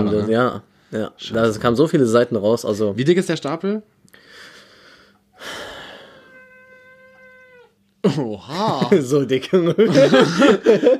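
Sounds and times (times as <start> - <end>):
speech: 0.0 - 4.5, 8.0 - 10.9
tomcat meowing: 6.1 - 7.8
laughter: 8.1 - 10.9.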